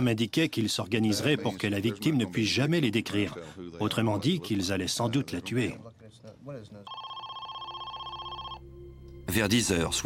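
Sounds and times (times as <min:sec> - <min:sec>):
speech: 0:00.0 - 0:07.1, 0:09.3 - 0:10.0
telephone ringing with a warbling electronic trill: 0:06.9 - 0:08.7.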